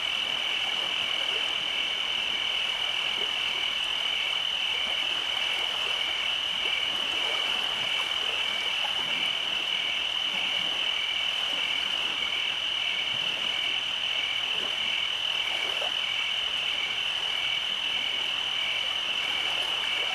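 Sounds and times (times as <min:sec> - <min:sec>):
cicadas and crickets chorus at night: 0:00.0 - 0:20.1.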